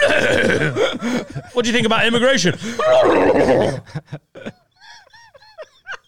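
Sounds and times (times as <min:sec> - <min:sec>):
laughter: 0:00.0 - 0:06.0
speech: 0:00.2 - 0:04.3
horse neighing: 0:02.8 - 0:03.8.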